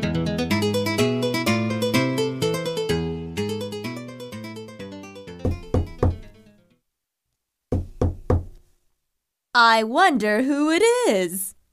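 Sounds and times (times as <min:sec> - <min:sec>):
cheerful music: 0:00.0 - 0:06.7
firm knocks on a door: 0:05.4 - 0:06.4, 0:07.7 - 0:08.6
speech: 0:09.6 - 0:11.5.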